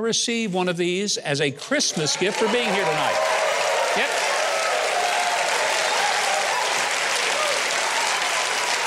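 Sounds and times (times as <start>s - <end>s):
speech: 0.0s - 4.4s
studio audience applause: 1.9s - 8.8s.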